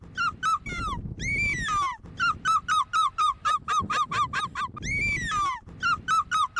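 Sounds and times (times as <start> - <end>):
woman imitating a seagull's screech, training for gull screeching: 0.2 - 6.5.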